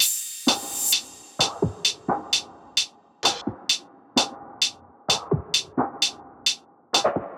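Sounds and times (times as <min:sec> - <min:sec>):
pop EDM drum kit top loop at 130 BPM: 0:00.0 - 0:07.3.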